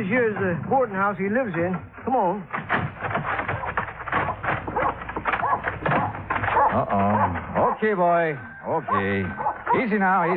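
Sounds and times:
speech: 0.0s - 2.8s, 6.8s - 10.3s
dog growling and whining with faint yelping: 4.3s - 7.8s, 8.4s - 10.3s.

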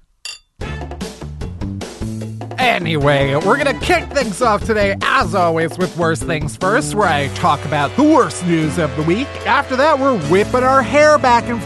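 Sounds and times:
glasses of bubbly clinking in a toast: 0.2s - 0.6s
upbeat music with stepping notes: 0.6s - 11.6s
speech: 2.6s - 11.6s.

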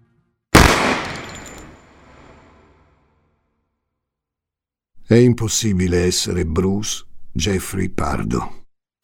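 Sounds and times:
pistol shot: 0.6s - 1.7s
speech: 5.1s - 8.6s.

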